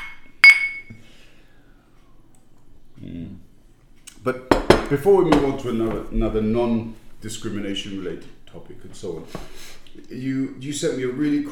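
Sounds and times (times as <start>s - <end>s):
glasses clinking in a toast: 0.0s - 1.0s
speech: 4.2s - 11.5s.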